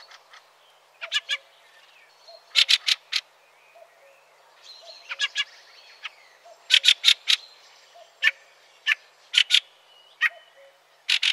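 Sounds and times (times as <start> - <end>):
soft background hiss: 0.0 - 11.3
Fieldfare rasping chack calls: 1.0 - 1.5, 2.5 - 3.2, 6.7 - 7.4, 8.2 - 10.4, 11.1 - 11.3.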